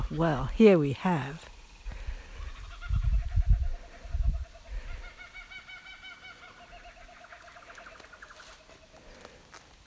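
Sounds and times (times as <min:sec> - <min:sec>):
speech: 0:00.1 - 0:01.5
kookaburra laughing call: 0:02.5 - 0:08.4.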